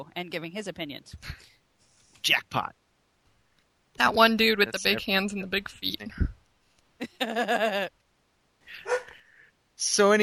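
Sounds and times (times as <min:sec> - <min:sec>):
speech: 0:00.0 - 0:01.6, 0:02.2 - 0:02.8, 0:04.0 - 0:06.3, 0:07.0 - 0:08.0, 0:09.8 - 0:10.2
dog barking and yipping: 0:08.8 - 0:09.2.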